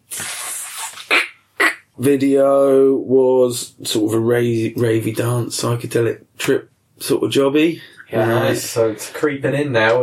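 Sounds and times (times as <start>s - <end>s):
voice imitating aerosol spray hiss: 0.0s - 1.3s
speech: 2.0s - 10.0s.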